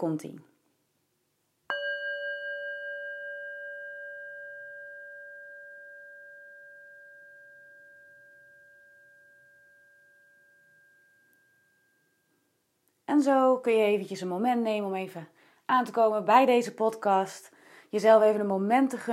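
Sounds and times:
speech: 0.0 - 0.5, 13.2 - 19.1
small singing bowl struck and ringing: 1.7 - 12.6.

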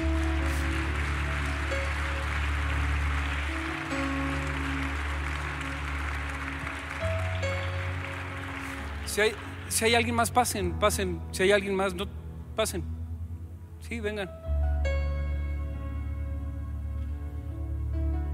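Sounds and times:
audience applause: 0.0 - 10.3
sustained low instrumental tones: 0.0 - 18.3
speech: 9.2 - 12.9, 13.8 - 14.4.

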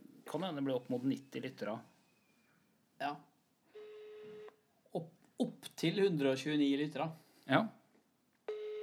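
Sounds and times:
speech: 0.3 - 1.9, 3.0 - 3.3, 4.9 - 7.8
ringback tone on an outgoing phone call: 3.7 - 4.6, 8.5 - 8.8.

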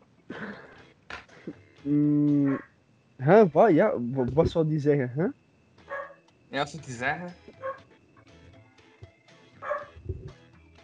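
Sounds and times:
speech: 1.5 - 5.4, 6.5 - 7.5
dog barking and yelping: 2.4 - 2.7, 5.9 - 6.2, 7.6 - 7.9, 9.6 - 10.0.

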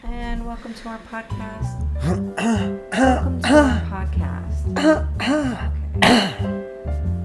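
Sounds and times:
speech: 0.4 - 7.0
man clearing phlegm from his throat with hacking and grunting: 4.8 - 6.5.

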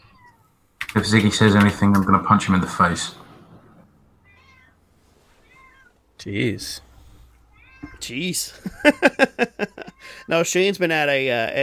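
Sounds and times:
cat meowing: 0.0 - 0.6, 4.1 - 6.0, 7.4 - 8.1
faint hum of room noise: 0.0 - 11.6
speech: 0.9 - 3.2, 6.2 - 6.9, 8.0 - 11.6
laughter: 8.5 - 10.2.

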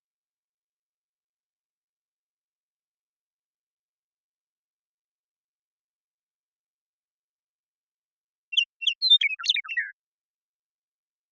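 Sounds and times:
Western meadowlark Sturnella neglecta singing in Washington: 8.5 - 10.0.

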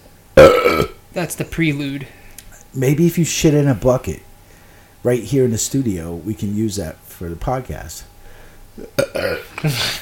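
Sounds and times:
burp after drinking beer: 0.4 - 1.0, 8.8 - 9.6
speech: 1.2 - 4.3, 5.0 - 8.1, 8.8 - 10.0.

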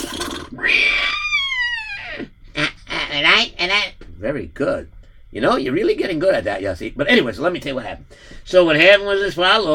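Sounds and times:
person imitating a horse's whinny: 0.0 - 3.3
speech: 3.4 - 9.7.

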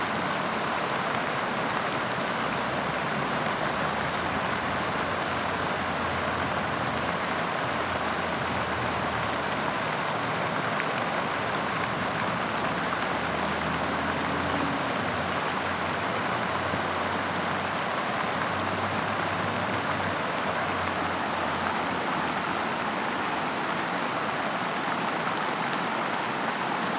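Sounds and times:
fountain splashing on a summer day: 0.0 - 26.9.

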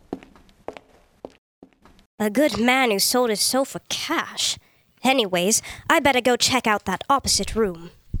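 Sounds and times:
footsteps on a hard floor at a walking pace: 0.0 - 2.9
speech: 2.2 - 8.0.

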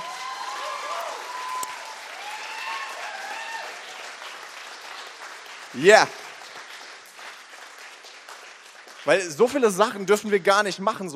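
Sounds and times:
faint voices and cheers: 0.0 - 3.9
crowd applauding: 0.0 - 11.1
speech: 5.7 - 6.2, 9.1 - 11.1.

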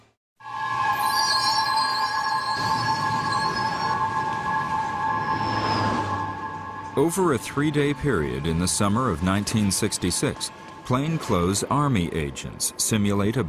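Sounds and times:
New York City subway train rumbling along the rails: 0.4 - 11.7
subway train wheel squeal and metallic screeching: 0.8 - 6.9
speech: 7.0 - 13.4.

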